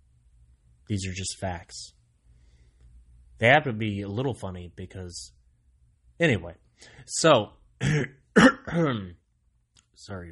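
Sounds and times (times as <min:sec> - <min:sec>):
speech: 0:00.9 - 0:02.0, 0:03.4 - 0:05.4, 0:06.2 - 0:09.2, 0:10.0 - 0:10.3
loud rough cough like a throat clearing: 0:07.8 - 0:09.2.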